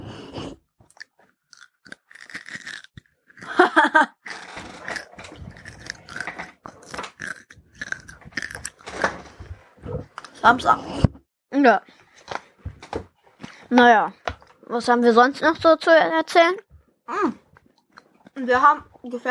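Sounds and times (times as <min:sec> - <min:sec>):
biting and chewing an M&M candy: 0:00.9 - 0:09.2
speech: 0:03.9 - 0:04.2, 0:10.4 - 0:11.9, 0:13.7 - 0:17.4, 0:18.4 - 0:19.2.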